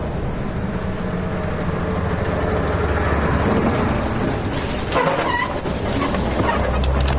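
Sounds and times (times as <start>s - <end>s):
moving car engine drone and road noise: 0.0s - 7.1s
mechanical clicks and squeaks: 4.9s - 7.1s.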